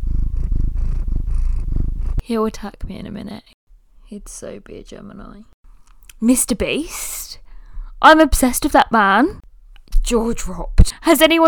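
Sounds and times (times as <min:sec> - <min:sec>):
cat purring: 0:00.0 - 0:02.2
speech: 0:02.3 - 0:05.5, 0:06.2 - 0:07.4, 0:08.0 - 0:11.4.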